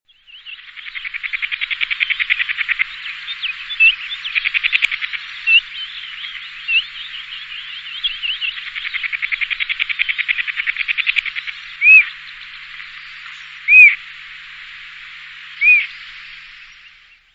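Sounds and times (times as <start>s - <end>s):
black-winged kite singing: 0.1s - 17.3s.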